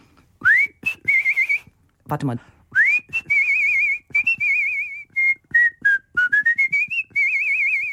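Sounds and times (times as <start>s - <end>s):
person whistling imitating a small songbird: 0.4s - 1.8s, 2.7s - 7.9s
speech: 2.1s - 2.6s.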